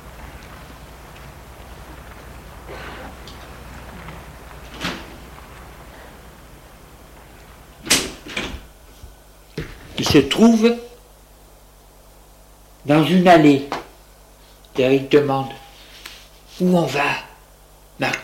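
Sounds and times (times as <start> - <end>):
building door opening across a courtyard: 0.0 - 8.8
steady low outdoor hum in a courtyard: 0.0 - 18.2
speech: 10.1 - 10.8, 12.9 - 13.8, 14.8 - 15.6, 16.6 - 17.3, 18.0 - 18.2.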